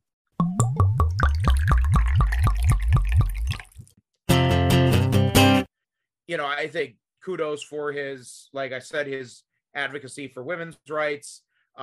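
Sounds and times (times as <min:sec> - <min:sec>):
liquid glugging out of a bottle into a glass: 0:00.4 - 0:04.0
music: 0:04.3 - 0:05.7
speech: 0:06.3 - 0:11.8.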